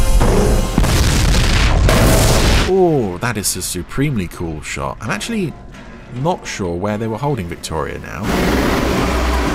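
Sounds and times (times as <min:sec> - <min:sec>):
loud rumbling explosion boom: 0:00.2 - 0:02.7
speech: 0:02.8 - 0:09.5.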